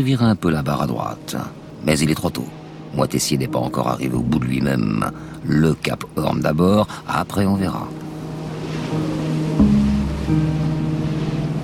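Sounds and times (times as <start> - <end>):
speech: 0.0 - 8.1
roaring sea with heavy breaking waves around a sailing yacht in rain and hail: 0.0 - 11.6.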